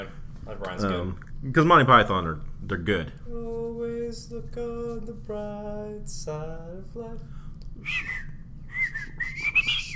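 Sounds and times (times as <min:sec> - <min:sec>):
speech: 0:00.0 - 0:09.5
low rumble: 0:00.0 - 0:09.9
person whistling a short halting melody: 0:07.8 - 0:09.9.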